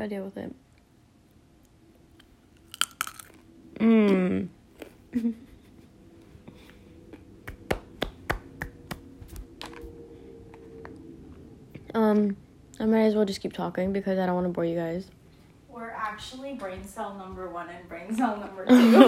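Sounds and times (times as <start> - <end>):
speech: 0.0 - 0.7, 3.8 - 4.6, 5.2 - 5.5, 12.2 - 15.2, 15.8 - 19.0
crunchy chewing of food: 2.2 - 3.5.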